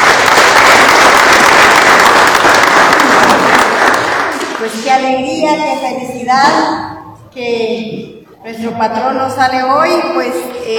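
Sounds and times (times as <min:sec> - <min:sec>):
Catholic community crowd applauding at a patron saint's pilgrimage procession: 0:00.0 - 0:04.8
speech: 0:04.6 - 0:10.7.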